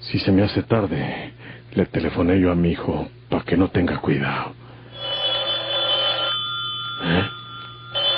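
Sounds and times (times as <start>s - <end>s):
low steady hum: 0.0s - 8.1s
speech: 0.1s - 4.6s
telephone bell ringing in sharp buzzing bursts: 4.9s - 8.1s.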